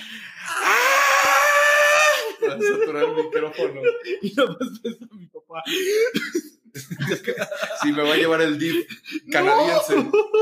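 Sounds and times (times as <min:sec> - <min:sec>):
person imitating a crying child with a wailing scream: 0:00.5 - 0:02.3
laughter: 0:01.9 - 0:10.4
speech: 0:02.6 - 0:10.4.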